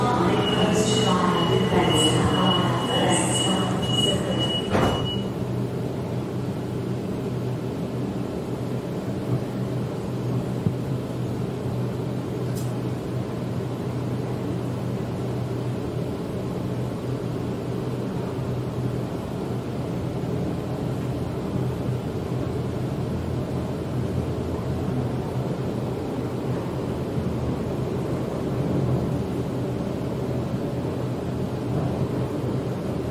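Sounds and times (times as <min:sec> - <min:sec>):
moving Sydney suburban train carriage rumble: 0:00.0 - 0:33.0
faint click: 0:12.5 - 0:12.8.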